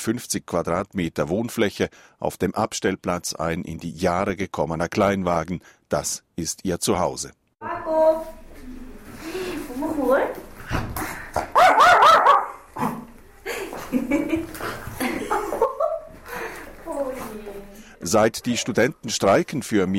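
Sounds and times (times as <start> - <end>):
speech: 0.0 - 8.1, 18.0 - 19.9
dog barking and whimpering: 11.5 - 13.0
people talking and chuckling softly: 12.8 - 18.8.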